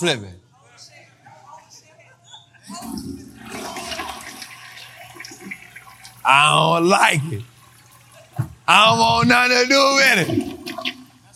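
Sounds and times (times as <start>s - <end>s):
speech: 0.0s - 0.4s, 2.7s - 3.2s, 6.2s - 7.5s, 8.7s - 10.8s
toilet flushing as the bowl drains: 2.7s - 11.3s.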